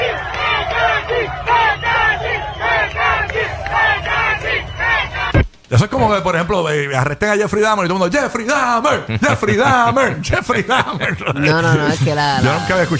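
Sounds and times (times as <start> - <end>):
large crowd screaming and shouting: 0.0 - 5.4
speech: 5.7 - 12.9
laughter: 8.8 - 12.9.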